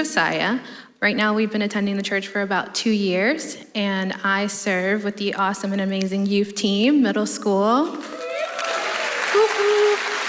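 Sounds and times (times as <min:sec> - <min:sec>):
speech: 0:00.0 - 0:08.2
audience clapping: 0:08.0 - 0:10.2
people cheering: 0:08.0 - 0:10.2
person whooping: 0:08.1 - 0:10.2.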